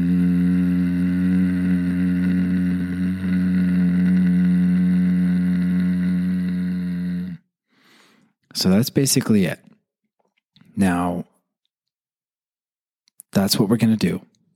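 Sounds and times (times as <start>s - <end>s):
long steady low hum voiced through the nose: 0.0s - 7.5s
speech: 8.6s - 9.6s, 10.8s - 11.3s, 13.4s - 14.3s.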